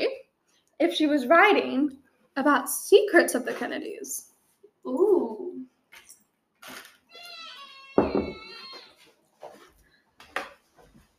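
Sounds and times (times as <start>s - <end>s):
speech: 0.8s - 5.5s
cat meowing: 7.1s - 9.0s.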